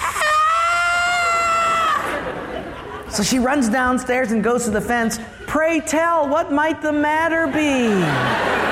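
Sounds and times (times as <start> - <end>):
woman screaming a high-pitched piercing scream: 0.0 - 2.2
laughter: 0.0 - 3.8, 7.3 - 8.7
speech: 3.2 - 8.5.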